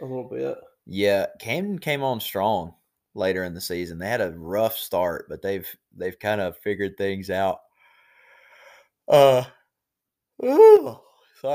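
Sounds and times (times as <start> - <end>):
speech: 0.0 - 7.6, 9.1 - 9.6, 10.4 - 11.5
person yawning loudly: 9.1 - 9.6, 10.4 - 11.1.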